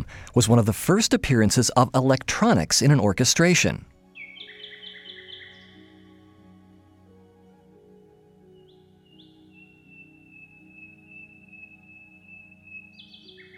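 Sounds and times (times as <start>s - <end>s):
speech: 0.4s - 3.9s
recorded nightingale singing: 4.1s - 6.5s, 8.4s - 13.5s.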